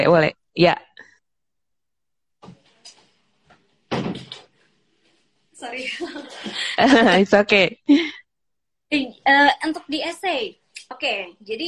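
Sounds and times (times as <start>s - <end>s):
speech: 0.0s - 0.9s, 5.6s - 8.2s, 8.9s - 11.6s
door thudding shut: 3.9s - 4.4s
door knocks and shuffling: 3.9s - 4.5s
laughter: 5.8s - 7.4s.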